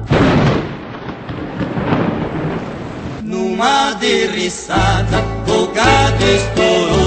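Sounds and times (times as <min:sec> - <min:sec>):
thunder rumbling over a winter pasture: 0:00.0 - 0:03.2
speech: 0:03.6 - 0:06.9.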